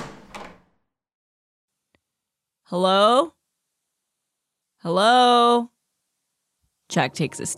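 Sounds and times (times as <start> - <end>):
office door opening with a rattle: 0.0 - 0.7
speech: 2.7 - 3.4, 4.8 - 5.7, 6.9 - 7.5.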